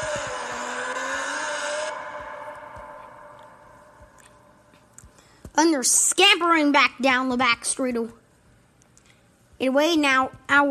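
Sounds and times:
Formula 1-style race car engines roaring in a racing video game: 0:00.0 - 0:04.6
speech: 0:05.6 - 0:08.2, 0:09.6 - 0:10.6.

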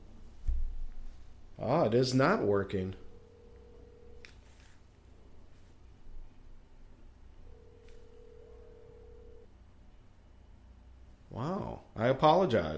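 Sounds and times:
speech: 0:01.6 - 0:03.0, 0:12.1 - 0:12.7
phone line ring tones through a receiver: 0:02.8 - 0:04.6, 0:07.4 - 0:09.5.

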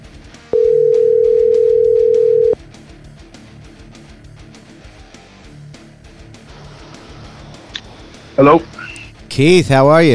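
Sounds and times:
telephone dial tone while placing a call: 0:00.6 - 0:02.6
speech: 0:08.4 - 0:08.7, 0:09.4 - 0:10.1.

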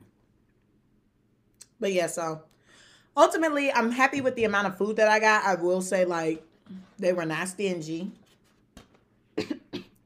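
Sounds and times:
speech: 0:01.8 - 0:02.6, 0:03.2 - 0:08.2
person coughing harshly: 0:09.4 - 0:10.0.

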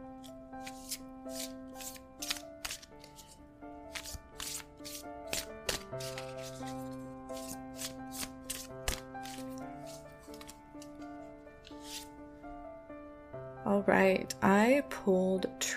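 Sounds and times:
soft sustained music tones: 0:00.0 - 0:15.7
deck of cards being shuffled: 0:00.2 - 0:12.1
speech: 0:13.8 - 0:15.6.

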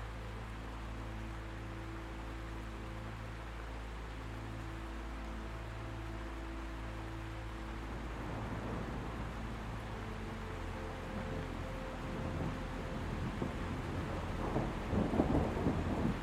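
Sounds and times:
relaxing melodies: 0:00.0 - 0:16.2
thunder: 0:13.2 - 0:16.2.

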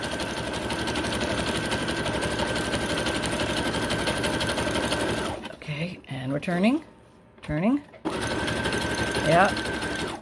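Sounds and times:
sewing machine stitching fabric: 0:00.0 - 0:05.6, 0:08.0 - 0:10.2
speech: 0:06.4 - 0:06.9, 0:07.5 - 0:08.0, 0:09.3 - 0:09.7.

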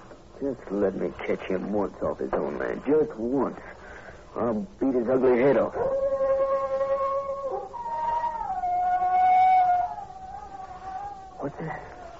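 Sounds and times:
speech: 0:00.4 - 0:03.8, 0:04.4 - 0:06.0
wolf-like animal howl: 0:05.8 - 0:12.1.

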